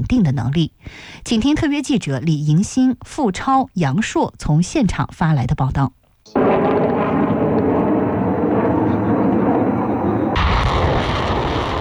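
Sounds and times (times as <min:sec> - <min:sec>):
speech: 0:00.0 - 0:06.0
air and ground fire delivering long-range strikes in a live land-air joint military exercise: 0:06.4 - 0:11.8.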